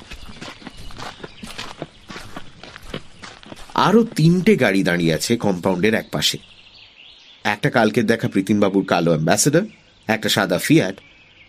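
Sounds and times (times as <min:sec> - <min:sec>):
footsteps crunching along a gravel path toward a house: 0:00.0 - 0:05.8
speech: 0:03.8 - 0:06.5, 0:07.4 - 0:11.1.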